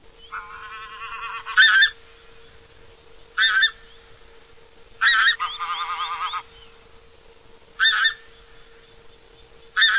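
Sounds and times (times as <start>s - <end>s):
granaiola goose honking: 0.3s - 2.0s, 3.4s - 3.8s, 5.0s - 6.5s.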